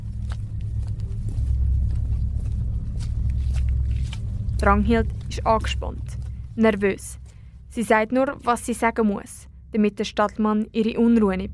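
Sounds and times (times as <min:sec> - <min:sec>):
footsteps of two people walking outdoors to a car: 0:00.0 - 0:08.6
steady low rumble: 0:00.0 - 0:11.5
speech: 0:04.6 - 0:11.5.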